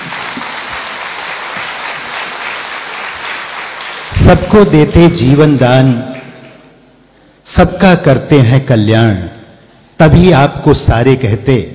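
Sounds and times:
audience applause welcoming guests at an event: 0.0 - 4.6
speech: 4.3 - 6.1, 7.5 - 9.4, 10.0 - 11.7.

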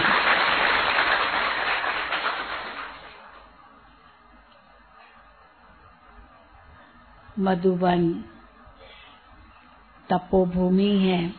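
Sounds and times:
large audience applauding: 0.0 - 3.6
speech: 7.4 - 8.3, 10.1 - 11.3.

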